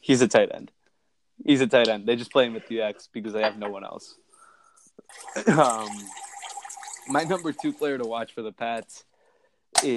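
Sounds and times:
speech: 0.0s - 0.8s, 1.4s - 4.2s, 5.0s - 6.3s, 7.1s - 9.1s, 9.7s - 9.9s
vodka drink pouring into a glass: 5.0s - 8.2s.

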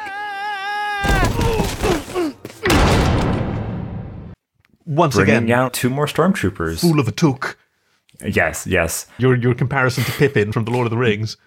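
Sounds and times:
body overshooting a landing platform and slamming into a door: 1.0s - 4.4s
speech: 4.9s - 7.6s, 8.2s - 11.4s.

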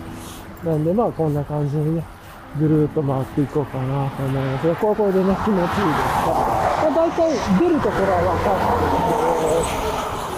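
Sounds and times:
speech: 0.6s - 10.2s
cars speeding past on road: 3.1s - 10.3s.

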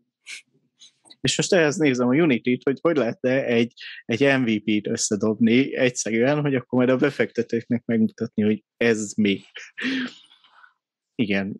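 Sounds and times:
speech: 1.2s - 10.3s, 11.2s - 11.5s
person sneezing: 9.8s - 10.2s.

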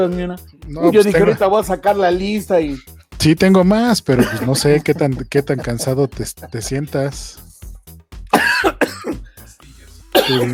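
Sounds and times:
speech: 0.0s - 7.4s, 10.3s - 10.5s
laughter: 0.8s - 1.8s, 4.0s - 7.2s
person coughing hard after something went down the wrong way: 4.1s - 4.6s, 8.3s - 9.3s, 10.1s - 10.5s
person gasping: 9.2s - 9.5s.

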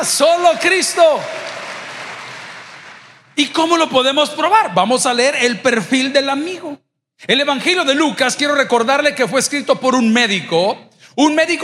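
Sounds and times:
speech: 0.0s - 1.6s, 3.4s - 11.6s
crowd applauding: 0.0s - 3.4s.

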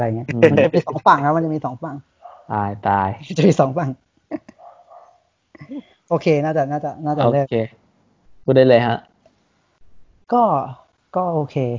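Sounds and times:
speech: 0.0s - 4.5s, 5.6s - 7.8s, 8.5s - 9.1s, 10.3s - 11.7s
dogs barking at night at a house: 2.2s - 2.6s, 4.5s - 5.3s.

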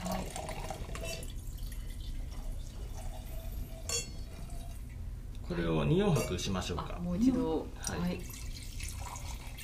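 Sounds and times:
wine poured into a wine glass from height: 0.0s - 4.8s, 7.8s - 9.6s
glass clinking: 3.0s - 4.8s, 6.1s - 6.5s
speech: 5.5s - 8.4s.

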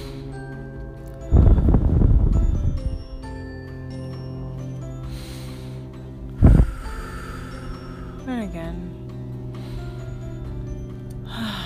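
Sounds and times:
deep breaths in and out: 0.0s - 0.7s, 1.3s - 2.4s, 5.0s - 8.3s, 9.3s - 10.4s, 11.1s - 11.6s
steady soft music: 0.0s - 11.6s.

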